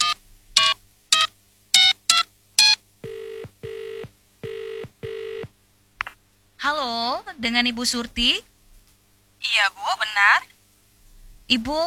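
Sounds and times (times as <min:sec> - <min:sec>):
phone keypad beeps dialing a number: 0:00.0 - 0:05.4
speech: 0:06.6 - 0:08.5, 0:09.4 - 0:10.5, 0:11.5 - 0:11.8.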